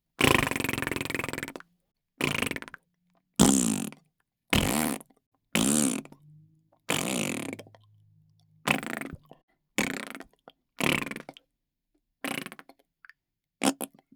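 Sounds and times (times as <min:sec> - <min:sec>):
blowing a wet and dry tongue raspberry with the mouth: 0:00.2 - 0:01.6, 0:02.2 - 0:02.8, 0:03.4 - 0:04.0, 0:04.6 - 0:05.0, 0:05.6 - 0:11.4.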